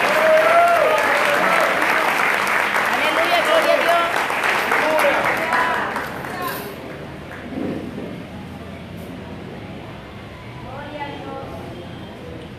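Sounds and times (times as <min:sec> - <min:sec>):
congregation applauding: 0:00.0 - 0:07.6.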